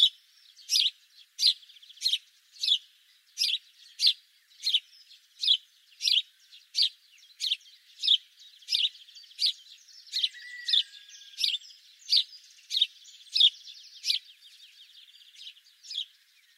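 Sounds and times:
house sparrow Passer domesticus chirping: 0.0 - 16.5.

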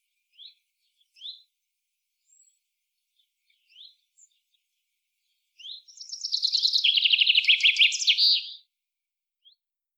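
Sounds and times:
common chaffinch Fringilla coelebs singing: 5.6 - 8.6.

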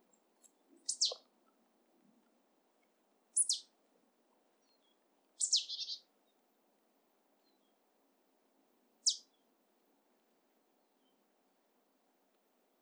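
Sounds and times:
marsh tit Poecile palustris giving abrupt high downslurred call notes: 0.9 - 1.3, 3.4 - 3.7, 5.4 - 6.0, 9.0 - 9.3.

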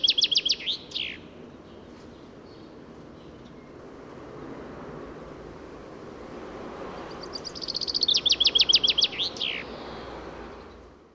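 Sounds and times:
Fringilla coelebs chaffinch song: 0.0 - 4.0, 6.8 - 11.1.

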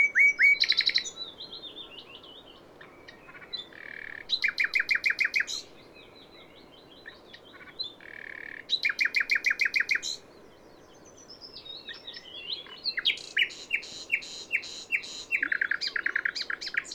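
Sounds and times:
common nightingale Luscinia megarhynchos singing: 0.0 - 16.9.

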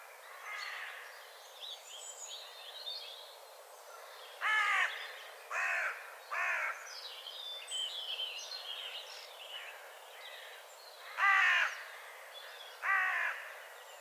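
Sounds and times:
Carrion crow cawing: 4.4 - 4.9, 5.5 - 6.8, 10.4 - 13.7.

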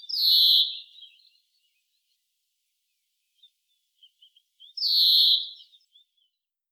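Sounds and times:
faint bird chirps: 0.0 - 2.2, 2.8 - 6.5.

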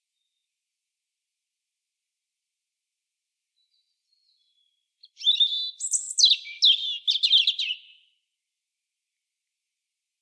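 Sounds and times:
European robin Erithacus rubecula singing: 3.6 - 8.2.

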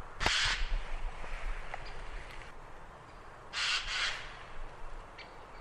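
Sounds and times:
Eurasian jay harsh rasping screeches: 0.2 - 0.8, 3.5 - 4.4.

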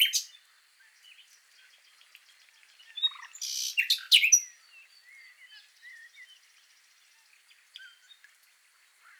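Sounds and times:
common nightingale Luscinia megarhynchos singing: 0.0 - 6.5, 7.8 - 8.2.

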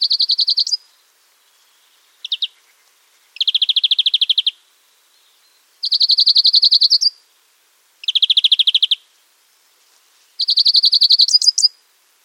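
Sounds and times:
European greenfinch Chloris chloris trilling song: 0.0 - 0.9, 1.5 - 2.8, 3.4 - 4.6, 5.2 - 7.2, 8.0 - 9.0, 10.4 - 11.8.

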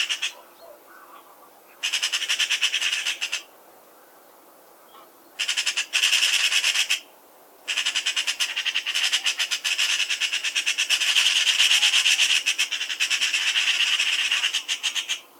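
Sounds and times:
Pica pica Eurasian magpie chattering: 0.0 - 0.4, 1.8 - 3.5, 5.4 - 7.0, 7.7 - 15.2.

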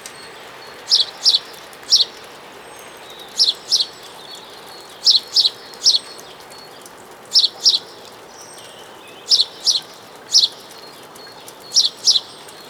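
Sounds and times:
house sparrow chirping: 0.3 - 2.2, 2.8 - 6.2, 7.4 - 7.9, 8.6 - 12.6.

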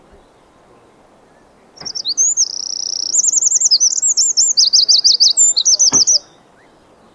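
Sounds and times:
Eurasian wren Troglodytes troglodytes song: 0.0 - 7.1
sharp click: 1.8 - 2.2.

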